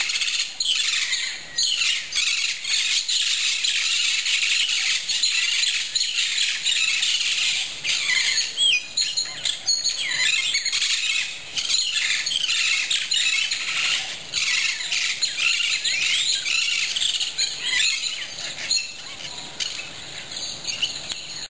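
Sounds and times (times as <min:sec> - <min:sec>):
parrots: 0:00.0 - 0:21.5.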